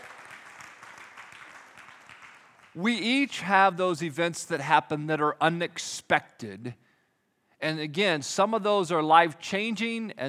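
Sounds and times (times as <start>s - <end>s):
audience applauding during a talk: 0.0s - 2.8s
speech: 2.8s - 6.8s, 7.6s - 10.2s.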